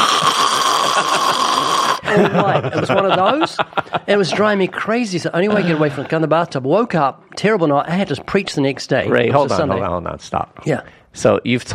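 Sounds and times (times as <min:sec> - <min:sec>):
voice imitating loud raspy rattling snoring: 0:00.0 - 0:02.0
laughter: 0:00.7 - 0:04.7, 0:05.4 - 0:06.3
speech: 0:02.1 - 0:11.7.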